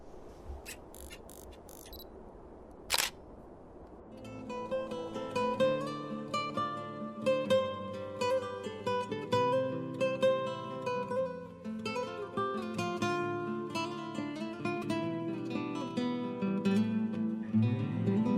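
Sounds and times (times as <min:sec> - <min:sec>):
camera shutter click taking a photo: 0:02.9 - 0:03.2
soft melodic music with sustained tones: 0:04.2 - 0:18.3.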